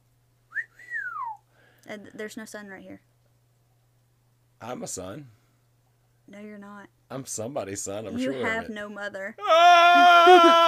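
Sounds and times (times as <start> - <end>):
person whistling: 0.5 - 1.4
speech: 1.9 - 3.1, 4.6 - 5.4, 6.3 - 10.6.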